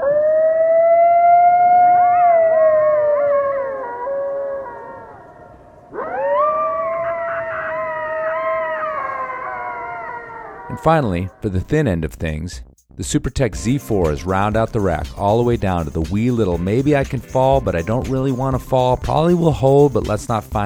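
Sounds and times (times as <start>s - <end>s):
coyote howling: 0.0s - 11.4s
speech: 10.8s - 20.6s.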